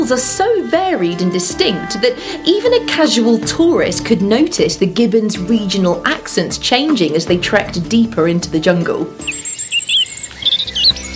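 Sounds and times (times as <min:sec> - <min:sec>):
speech: 0:00.0 - 0:09.3
dawn chorus birdsong in England: 0:09.0 - 0:11.1.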